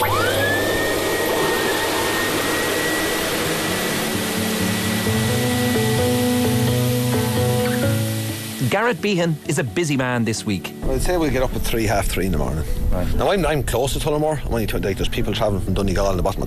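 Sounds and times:
double blower dryer for grooming cattle roaring on a farm: 0.0s - 8.8s
speech: 8.7s - 16.4s.

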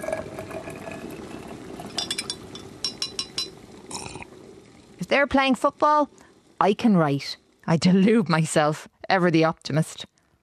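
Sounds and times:
spoon clinking against a cup making tea: 2.0s - 3.6s
speech: 5.1s - 10.1s.

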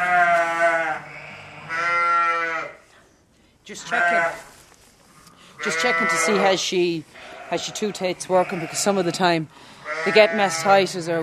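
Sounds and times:
ewe bleating while giving birth to twin lambs: 0.0s - 2.8s, 3.7s - 4.6s, 5.6s - 9.2s, 9.8s - 11.2s
speech: 3.7s - 4.5s, 5.6s - 11.2s.

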